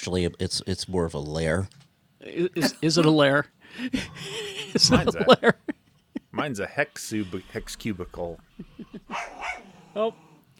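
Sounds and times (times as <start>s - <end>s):
speech: 0.0s - 10.2s
laughter: 2.6s - 9.3s
dogs barking and yipping while fighting: 9.1s - 9.8s.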